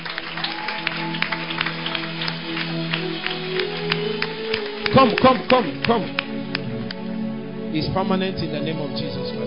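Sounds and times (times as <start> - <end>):
audience clapping: 0.0 - 7.2
speech: 5.0 - 6.2, 7.7 - 9.3.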